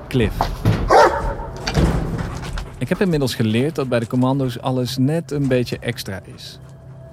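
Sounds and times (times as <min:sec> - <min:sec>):
speech: 0:00.1 - 0:00.7, 0:02.8 - 0:06.7
Belgian Malinois dog barking: 0:00.9 - 0:01.7.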